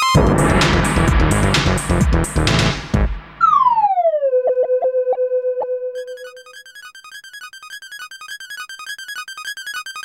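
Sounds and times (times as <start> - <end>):
losing theme music: 0.2 - 6.2.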